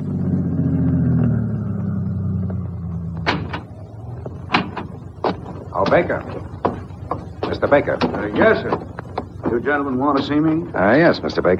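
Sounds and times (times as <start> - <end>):
car engine rumbling and winding down to a stop: 0.0 - 11.5
car doors slamming shut: 3.0 - 11.5
speech: 5.9 - 6.5, 7.6 - 8.9, 9.5 - 11.5.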